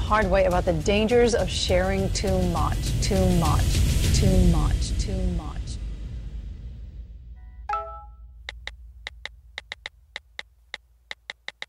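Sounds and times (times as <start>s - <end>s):
low rumble: 0.0s - 11.3s
speech: 0.1s - 5.6s
phone text message alert chime: 7.6s - 8.2s
crisp clicks of tapping on a phone keypad: 11.1s - 11.6s.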